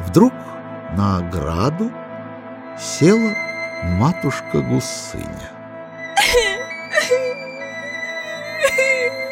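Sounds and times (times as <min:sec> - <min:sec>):
speech: 0:00.2 - 0:02.0, 0:02.8 - 0:05.6
voice imitating a girl sobbing bitterly: 0:06.2 - 0:07.4, 0:08.4 - 0:09.3.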